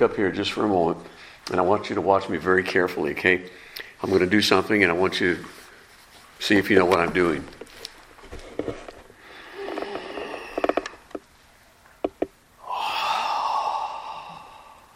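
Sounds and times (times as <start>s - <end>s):
speech: 0.0s - 5.6s, 6.4s - 7.6s
deep breathing: 1.0s - 1.5s, 3.5s - 4.0s, 9.1s - 11.2s, 12.6s - 14.9s.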